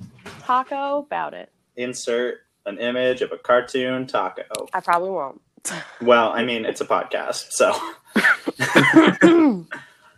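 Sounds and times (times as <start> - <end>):
speech: 0.5 - 9.8
laughter: 1.8 - 4.4, 5.7 - 9.8
wet phlegmy coughing: 5.7 - 9.8.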